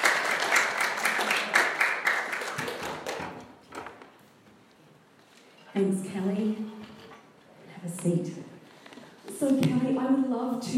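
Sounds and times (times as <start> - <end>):
audience applause: 0.0 - 3.5
speech: 5.8 - 6.8, 7.8 - 8.4, 9.4 - 10.7.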